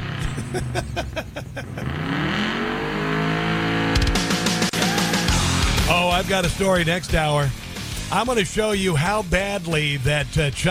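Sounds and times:
gasoline car engine revving and accelerating hard with a gear shift: 0.0 - 1.0, 1.6 - 5.7
laughter: 0.2 - 2.0
speech: 0.5 - 2.1, 5.9 - 10.6.

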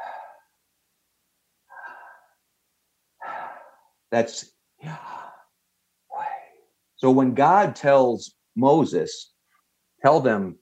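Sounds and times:
slow human breathing: 0.0 - 0.6, 1.7 - 2.4, 3.2 - 4.0, 4.8 - 6.7
speech: 4.1 - 5.1, 7.0 - 9.3, 10.0 - 10.5.

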